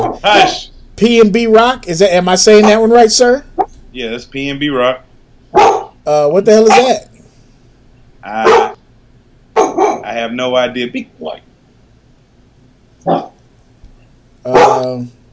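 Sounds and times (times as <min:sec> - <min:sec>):
dog barking: 0:00.0 - 0:00.7, 0:02.6 - 0:02.9, 0:05.5 - 0:06.0, 0:06.6 - 0:07.0, 0:08.3 - 0:08.8, 0:09.6 - 0:10.1, 0:13.0 - 0:13.4, 0:14.5 - 0:15.1
speech: 0:00.2 - 0:07.1, 0:08.2 - 0:08.6, 0:10.1 - 0:11.5, 0:13.0 - 0:13.3, 0:14.4 - 0:15.2.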